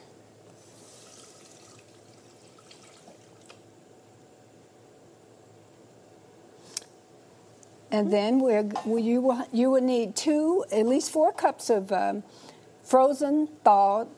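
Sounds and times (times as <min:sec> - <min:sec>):
water running from a tap into a cooking pot: 0:00.6 - 0:03.6
speech: 0:07.9 - 0:14.1.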